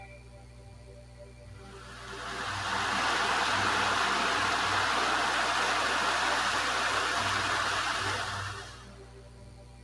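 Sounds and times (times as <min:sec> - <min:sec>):
steady full rush of river water: 0:01.8 - 0:08.8.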